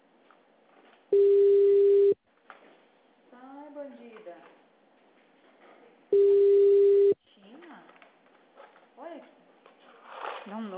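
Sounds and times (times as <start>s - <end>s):
faint noise: 0.0s - 10.7s
telephone tone while a call is placed: 1.2s - 2.2s, 6.1s - 7.2s.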